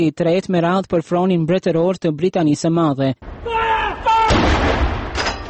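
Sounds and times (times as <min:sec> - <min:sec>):
speech: 0:00.0 - 0:04.1
artillery gun salute fired in a London park for a royal birth: 0:03.3 - 0:05.2.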